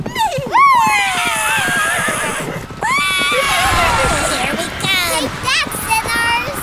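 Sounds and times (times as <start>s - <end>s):
horses whinnying: 0.0s - 5.0s
horse hooves clip-clopping: 0.0s - 6.3s.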